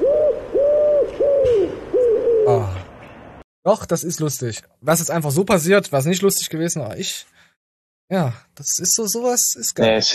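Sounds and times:
pigeon cooing in a played video: 0.0s - 2.9s
speech: 3.7s - 7.4s, 8.1s - 10.1s.

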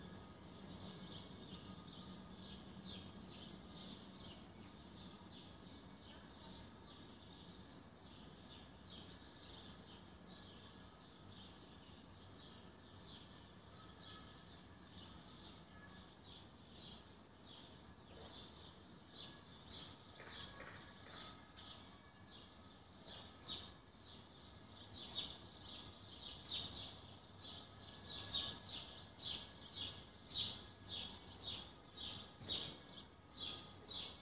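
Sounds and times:
faint outdoor morning noise on a balcony: 0.0s - 34.1s.

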